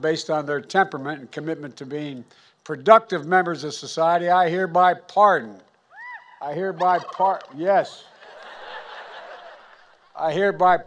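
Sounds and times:
speech: 0.0 - 5.7, 6.4 - 8.1, 10.2 - 10.8
pair of turkeys gobbling in Washington: 6.0 - 7.5
laughter: 6.6 - 10.6.

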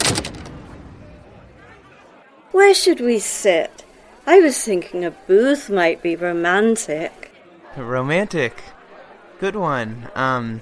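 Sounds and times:
bar door swinging shut: 0.0 - 0.8
speech: 2.6 - 8.8, 9.4 - 10.6.

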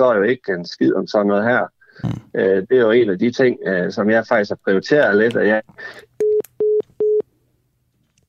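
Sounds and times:
speech: 0.0 - 6.1
telephone busy tone after a call drops: 6.2 - 7.2.

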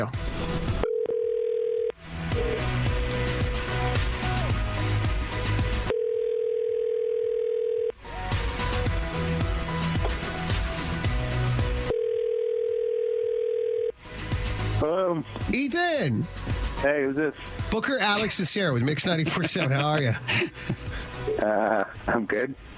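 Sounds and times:
speech: 0.0 - 0.3, 15.5 - 22.7
outgoing phone call ringback tone: 0.8 - 2.0, 5.9 - 8.0, 11.9 - 14.0
loud upbeat music: 2.0 - 5.9, 8.0 - 11.9, 14.0 - 22.3
laughter: 18.2 - 21.1.

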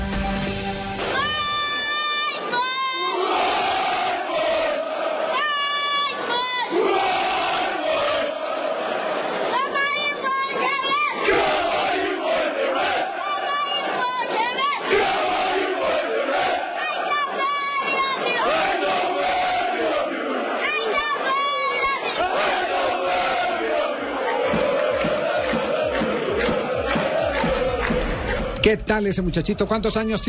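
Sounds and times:
large football stadium crowd chanting in unison: 1.0 - 29.4
child leading call-and-response chant: 1.1 - 3.4, 5.2 - 6.8, 9.5 - 11.3, 13.2 - 14.9, 16.7 - 18.6, 20.6 - 22.4
speech: 28.7 - 30.2.

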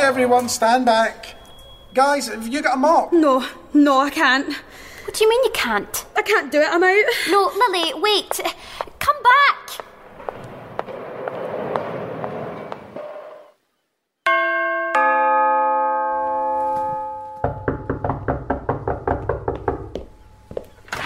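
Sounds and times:
speech: 0.1 - 9.9
two-note doorbell chime: 14.3 - 17.7
loud rapid knocking on a door: 17.4 - 20.1.

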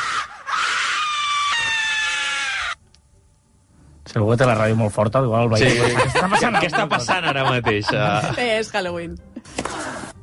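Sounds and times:
person screaming loudly and shrilly: 0.0 - 2.8
speech: 4.1 - 9.3
laughter: 5.6 - 8.5.

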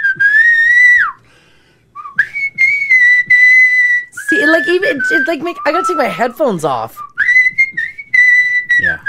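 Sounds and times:
loud human whistling: 0.0 - 1.2, 2.0 - 6.0, 7.0 - 9.0
speech: 4.5 - 7.1.

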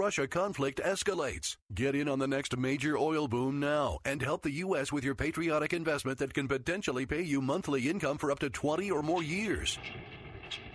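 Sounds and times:
speech: 0.0 - 10.6
producing oil well pump running: 9.3 - 10.7.

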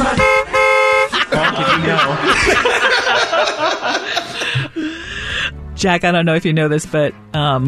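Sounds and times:
car horn honking: 0.1 - 1.2
people laughing: 1.1 - 5.0
speech: 5.8 - 7.6.

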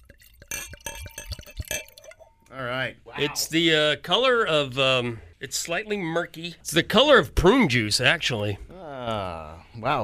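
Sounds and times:
wine pouring from a bottle into a glass: 0.0 - 2.4
speech: 2.6 - 10.0.

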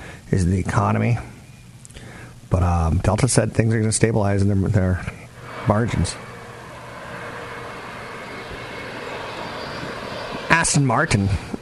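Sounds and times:
speech: 0.3 - 1.3, 2.5 - 6.2, 10.6 - 11.5
faint low hum: 4.8 - 11.6
airplane engine roar: 5.3 - 11.6.

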